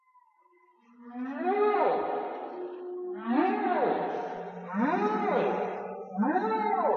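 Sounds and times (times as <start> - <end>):
whale song moaning calls: 0.8 - 6.9.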